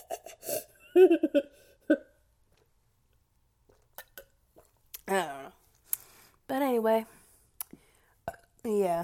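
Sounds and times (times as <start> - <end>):
speech: 1.0 - 1.4, 6.5 - 7.1, 8.6 - 9.0
person burping: 8.3 - 8.6.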